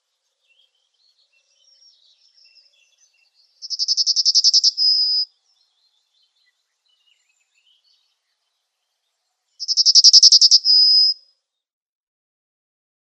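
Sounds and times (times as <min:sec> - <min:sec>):
yellowhammer song: 0:00.2 - 0:08.2, 0:09.6 - 0:11.2.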